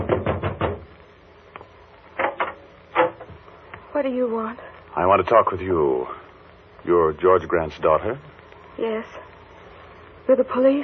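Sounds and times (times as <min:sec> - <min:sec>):
knocking on a door: 0:00.0 - 0:00.9
speech: 0:04.0 - 0:06.2, 0:06.8 - 0:09.3, 0:10.3 - 0:10.8.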